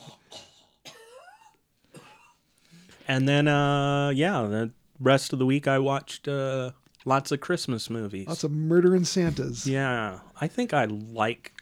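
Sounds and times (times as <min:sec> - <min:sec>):
harsh rasping coughs: 0:00.0 - 0:02.4
speech: 0:03.1 - 0:11.6.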